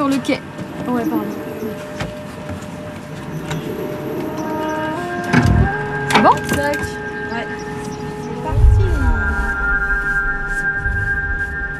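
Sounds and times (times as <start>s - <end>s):
speech: 0.1s - 2.0s, 6.2s - 7.6s
sustained higher whistling tones: 3.5s - 11.7s
humpback whale moaning call: 3.6s - 11.7s
deep underwater rumble: 8.5s - 11.7s.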